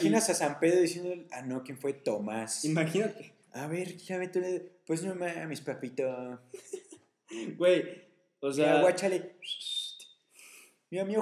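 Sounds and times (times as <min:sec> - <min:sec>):
laughter: 0:00.0 - 0:01.2, 0:02.6 - 0:07.8, 0:08.6 - 0:09.2
brief burst of voice: 0:00.0 - 0:06.4, 0:07.4 - 0:07.8, 0:08.5 - 0:09.9
speech: 0:00.0 - 0:09.7, 0:10.9 - 0:11.2
person whistling: 0:08.8 - 0:10.0.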